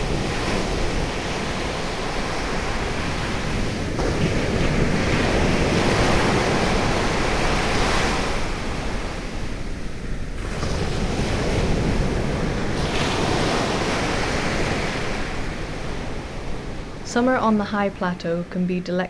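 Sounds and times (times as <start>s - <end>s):
gusty wind buffeting the microphone: 0.0s - 17.6s
sea waves on both sides of beach: 0.0s - 19.0s
speech: 17.2s - 19.0s.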